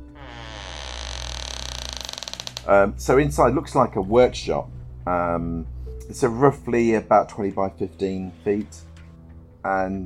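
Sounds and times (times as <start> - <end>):
wooden barn door creaking open, pulled by its handle: 0.0 - 3.0
speech: 2.6 - 8.9, 9.6 - 10.0.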